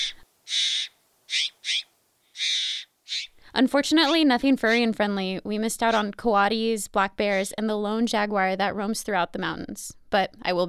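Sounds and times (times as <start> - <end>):
Mexican jays giving harsh raspy calls along a mountain park hiking trail: 0.0 - 5.0, 5.8 - 6.2, 7.2 - 7.6
speech: 3.6 - 10.6.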